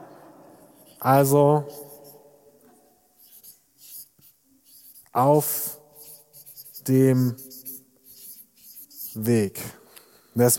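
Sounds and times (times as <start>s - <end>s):
marker or chalk writing on a board: 0.7s - 2.3s, 3.2s - 9.6s
speech: 1.0s - 1.8s, 5.2s - 5.8s, 6.9s - 7.5s, 9.2s - 9.8s, 10.4s - 10.5s.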